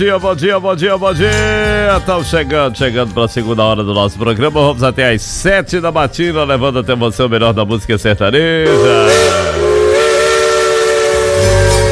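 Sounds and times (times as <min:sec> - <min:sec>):
speech: 0:00.0 - 0:09.4
steam locomotive whistle on a mountain railway: 0:08.6 - 0:11.9.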